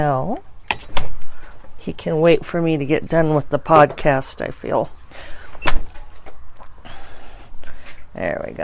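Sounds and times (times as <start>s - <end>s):
speech: 0.0s - 0.5s, 1.8s - 5.8s, 8.2s - 8.6s
door creaking: 5.5s - 6.4s.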